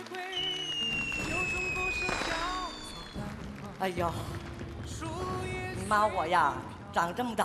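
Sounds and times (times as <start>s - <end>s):
New Year fireworks crackling and popping: 0.0s - 5.9s
rising firework whistles overhead: 0.3s - 3.3s
speech: 3.8s - 4.5s, 5.9s - 7.4s.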